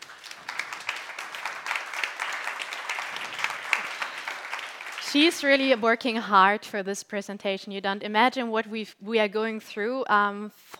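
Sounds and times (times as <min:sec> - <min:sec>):
audience applause at an award presentation: 0:00.0 - 0:05.6
speech: 0:05.1 - 0:10.7.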